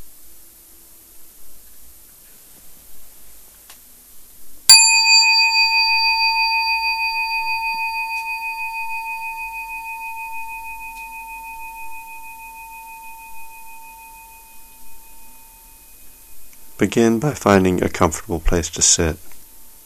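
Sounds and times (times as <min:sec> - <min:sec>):
faint hiss: 0:00.0 - 0:19.8
meditation bell struck to mark the beginning of a sitting: 0:04.7 - 0:17.8
speech: 0:16.8 - 0:19.3.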